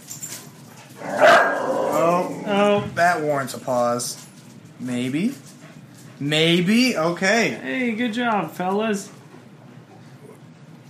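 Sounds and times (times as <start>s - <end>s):
dog barking: 1.0s - 2.2s
dog whining: 1.0s - 2.7s
speech: 3.2s - 5.5s, 6.2s - 9.2s.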